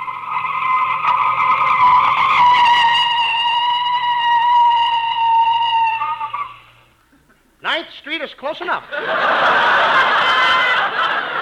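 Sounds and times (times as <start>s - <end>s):
car tire screech as a car skids to a halt: 0.0s - 6.8s
speech: 8.2s - 9.5s
laughter: 8.9s - 11.4s.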